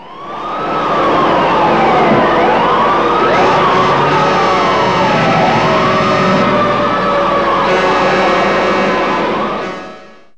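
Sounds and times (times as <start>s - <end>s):
fire truck: 0.0s - 10.3s.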